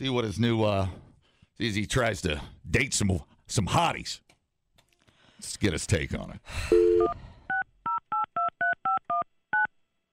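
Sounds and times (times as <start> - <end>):
speech: 0.0 - 1.0, 1.6 - 4.2, 5.4 - 7.2
phone number being dialed with touch tones: 6.7 - 9.7.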